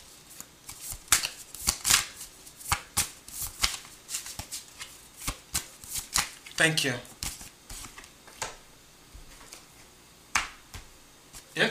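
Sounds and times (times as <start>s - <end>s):
tarot cards being shuffled: 0.3s - 8.5s
speech: 6.6s - 7.1s.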